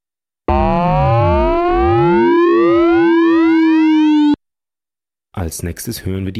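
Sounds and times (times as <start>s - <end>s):
frequency modulation between two sine-wave synthesizer oscillators: 0.5s - 4.4s
speech: 5.5s - 6.3s.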